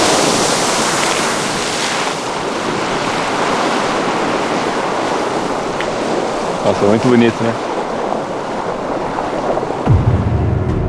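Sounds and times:
Strokkur geyser erupting with water gushing upward: 0:00.0 - 0:09.8
wind noise: 0:00.0 - 0:10.8
speech: 0:06.7 - 0:07.6.

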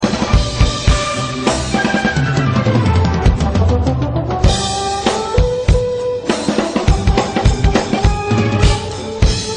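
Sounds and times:
drum kit: 0:00.0 - 0:09.5.

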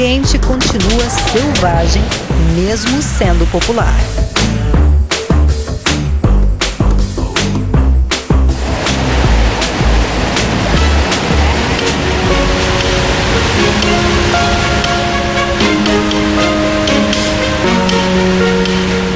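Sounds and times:
speech: 0:00.0 - 0:04.2
rushing waterfall roaring: 0:00.0 - 0:04.6, 0:08.1 - 0:19.1
rhythmic music beats: 0:00.0 - 0:19.1.

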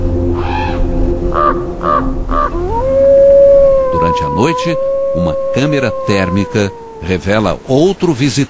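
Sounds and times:
low rumble: 0:00.0 - 0:08.4
crows cawing at a frozen animal carcass in deep snow: 0:00.4 - 0:07.1
speech: 0:04.2 - 0:08.4.

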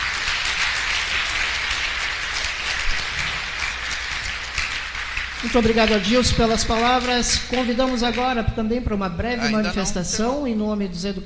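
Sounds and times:
audience applause: 0:00.0 - 0:08.3
speech: 0:05.4 - 0:11.2.

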